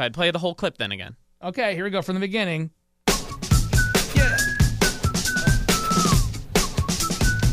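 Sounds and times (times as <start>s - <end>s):
speech: 0.0s - 2.8s
loud rhythmic thumping music in a played-back clip: 3.0s - 7.5s
thin faint whistle in a played-back clip: 3.1s - 7.5s.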